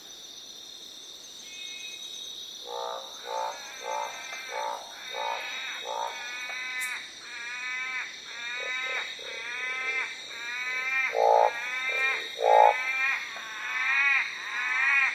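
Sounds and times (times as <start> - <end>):
northern barred frogs croaking in short gruff notes: 0.0 - 15.1
persistent whining insect chorus: 0.0 - 15.1.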